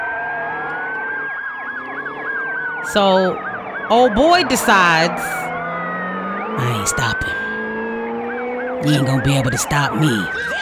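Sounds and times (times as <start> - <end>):
police car siren wailing during a police pursuit: 0.0 - 10.6
speech: 2.8 - 5.4, 6.6 - 7.4, 8.8 - 10.6.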